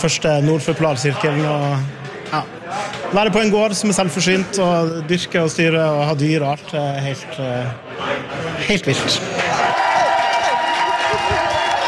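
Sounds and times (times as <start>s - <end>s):
speech: 0.0s - 9.4s
crowd cheering at a restaurant award ceremony: 9.3s - 11.8s.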